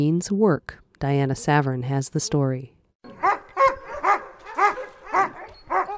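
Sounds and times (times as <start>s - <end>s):
speech: 0.0s - 2.8s
Alaskan husky sled dogs barking in Denali National Park, Alaska: 3.1s - 5.9s.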